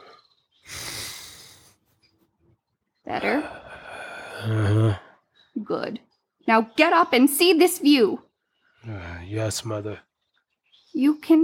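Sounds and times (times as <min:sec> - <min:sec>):
deep breath: 0:00.0 - 0:01.8, 0:03.2 - 0:05.1
speech: 0:03.1 - 0:03.6, 0:04.4 - 0:05.0, 0:05.6 - 0:10.1, 0:10.9 - 0:11.4.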